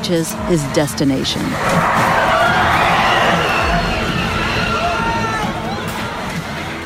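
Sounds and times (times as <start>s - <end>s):
speech: 0.1s - 2.2s
crowd of protesters shouting and screaming: 1.4s - 6.8s
high panicked cries: 1.5s - 5.7s.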